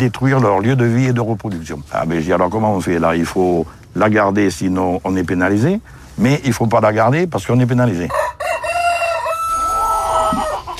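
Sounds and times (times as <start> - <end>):
speech: 0.0 - 8.4
rooster crowing: 8.1 - 10.7.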